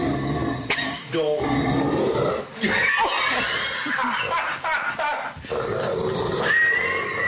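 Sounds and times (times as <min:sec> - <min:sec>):
big dog groaning and growling: 0:00.0 - 0:03.8, 0:05.4 - 0:07.2
speech: 0:01.1 - 0:01.6
laughter: 0:02.6 - 0:05.4.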